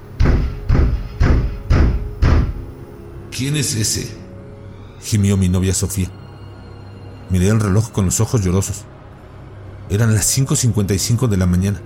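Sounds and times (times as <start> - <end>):
heavy knocking on an apartment door: 0.1 - 2.7
speech: 3.4 - 4.2, 5.0 - 6.2, 7.3 - 9.0, 9.9 - 11.8.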